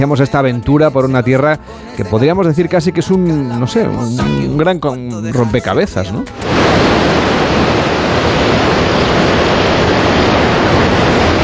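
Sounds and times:
speech: 0.0 - 6.8
sea surf washing against the shore at Pulpí, Almería, Spain: 6.4 - 11.4.

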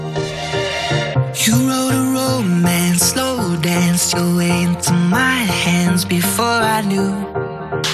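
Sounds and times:
upbeat pop track with synth chords playing on the radio: 0.2 - 7.9
speech: 1.4 - 1.8, 4.0 - 7.8.

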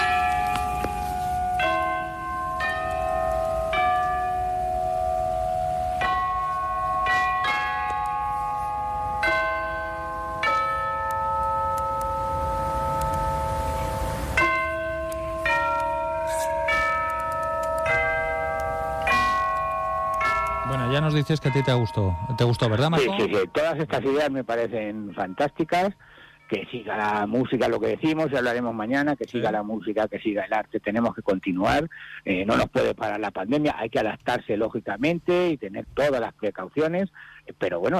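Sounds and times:
peal of church bells in a bell concert: 0.0 - 25.9
speech: 21.2 - 37.9.

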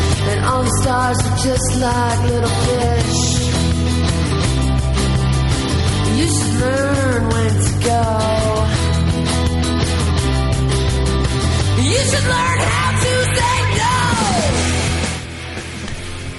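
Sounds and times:
loud rock song with female vocals: 0.0 - 16.1
dense distorted guitars: 0.0 - 16.3
steady bass: 0.0 - 16.3
woman singing and shouting: 0.3 - 3.5, 6.1 - 8.8, 11.8 - 14.6
speech: 0.5 - 3.4, 6.2 - 8.8, 11.9 - 13.9.

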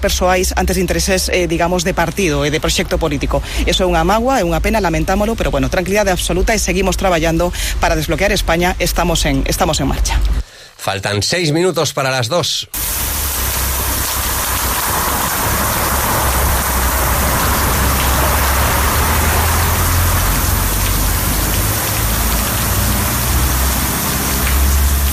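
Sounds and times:
speech: 0.0 - 13.2
broken irrigation sprinkler in a street planter spraying water: 12.8 - 25.1.

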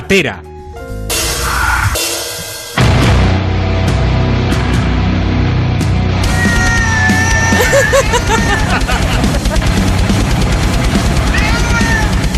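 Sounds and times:
distorted heavy metal music: 0.0 - 12.3
speech: 0.1 - 0.5
cat yowling and wailing: 6.2 - 8.7, 11.2 - 12.2
laughter: 7.0 - 10.2.

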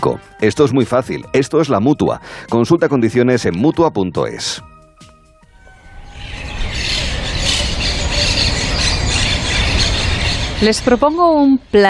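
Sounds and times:
speech: 0.0 - 4.7, 10.6 - 11.8
dense chorus of birds chirping: 5.0 - 11.8
short squealing tonal burst: 5.6 - 10.7.

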